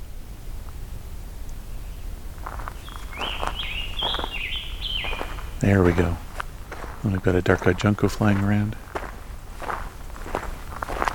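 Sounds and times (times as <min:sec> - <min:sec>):
low background noise: 0:00.0 - 0:11.1
footsteps: 0:02.4 - 0:11.1
Scarlet Tanager song with hoarse burry phrases: 0:02.7 - 0:08.9
speech: 0:05.7 - 0:06.2, 0:07.0 - 0:08.8.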